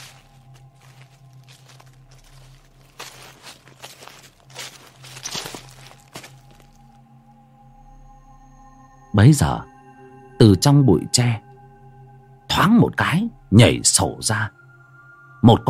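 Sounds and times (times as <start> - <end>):
rustling footsteps of someone walking behind: 0.0 - 7.0
speech: 9.2 - 9.7, 10.4 - 11.5, 12.6 - 14.6, 15.4 - 15.6.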